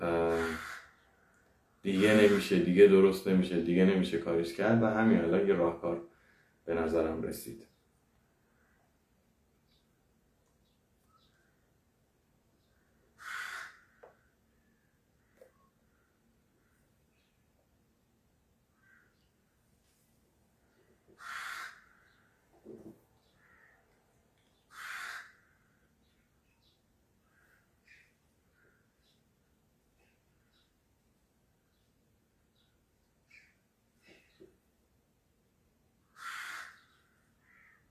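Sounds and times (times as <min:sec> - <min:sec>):
faint bird calls: 0:00.0 - 0:02.7, 0:10.6 - 0:11.8, 0:12.6 - 0:17.6, 0:18.7 - 0:19.7, 0:20.6 - 0:29.3, 0:29.9 - 0:30.8, 0:31.6 - 0:34.6, 0:36.0 - 0:37.9
crows cawing loudly: 0:00.2 - 0:01.4, 0:02.0 - 0:02.7, 0:12.8 - 0:16.9, 0:18.7 - 0:19.2, 0:21.1 - 0:22.3, 0:23.3 - 0:23.9, 0:24.6 - 0:26.0, 0:27.2 - 0:28.9, 0:36.0 - 0:37.9
speech: 0:01.8 - 0:06.1, 0:06.7 - 0:07.7.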